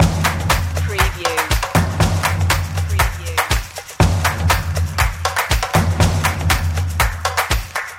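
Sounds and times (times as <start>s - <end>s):
energy drums loop with stomping: 0.0s - 7.9s.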